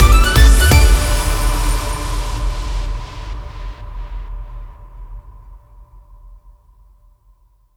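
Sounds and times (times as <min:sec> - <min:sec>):
big win end jingle: 0:00.0 - 0:02.2.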